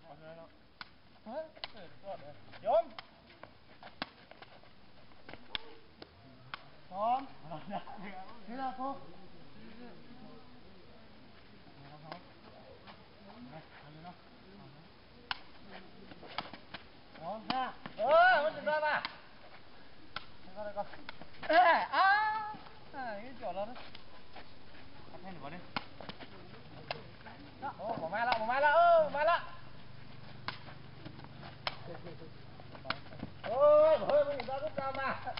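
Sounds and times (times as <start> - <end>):
young men's voices during sepak takraw: 0.0 - 4.1, 5.0 - 35.3
young men shouting while playing sepak takraw in a mountain village: 27.7 - 29.6, 33.5 - 35.3.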